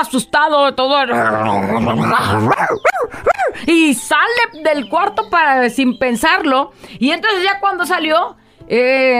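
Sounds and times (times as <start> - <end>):
speech: 0.0 - 9.1
dog whining, yelping and whimpering: 2.1 - 3.7.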